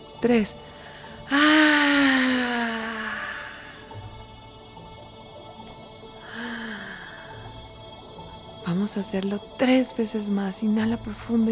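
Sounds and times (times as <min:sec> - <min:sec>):
speech: 0:00.2 - 0:01.8, 0:08.8 - 0:11.4
forceful voiced exhale during a breathing exercise: 0:01.3 - 0:03.8.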